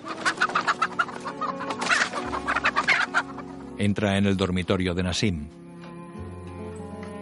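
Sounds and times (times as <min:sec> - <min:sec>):
hens clucking and squawking as they are shooed off a wooden plank covering a well: 0:00.0 - 0:03.8
speech: 0:03.8 - 0:05.6.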